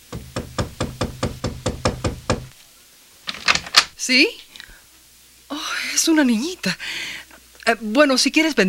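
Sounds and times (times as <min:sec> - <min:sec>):
knocking on a wooden door: 0:00.0 - 0:02.5
speech: 0:04.0 - 0:04.5, 0:05.6 - 0:08.6.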